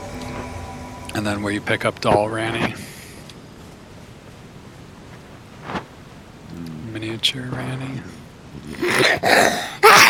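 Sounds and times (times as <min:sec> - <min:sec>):
speech: 0:01.2 - 0:02.8, 0:07.2 - 0:09.9
stifled sneeze: 0:08.7 - 0:10.0.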